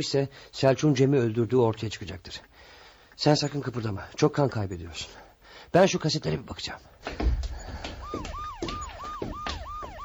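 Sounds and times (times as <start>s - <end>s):
speech: 0.0s - 2.5s, 3.2s - 7.4s, 8.1s - 8.4s
low rumble of traffic: 6.6s - 10.0s
police siren yelping: 7.5s - 10.0s.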